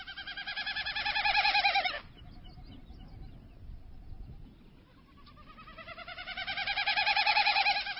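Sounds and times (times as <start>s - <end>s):
male Wilson's snipe winnowing in flight with tail feathers: 0.0s - 2.4s, 4.8s - 7.9s
faint breeze: 0.0s - 7.9s.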